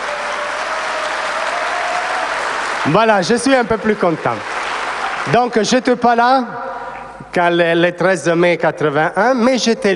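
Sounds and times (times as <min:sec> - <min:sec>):
audience applause: 0:00.0 - 0:05.7
speech: 0:02.8 - 0:04.5, 0:05.2 - 0:06.7, 0:07.4 - 0:09.9.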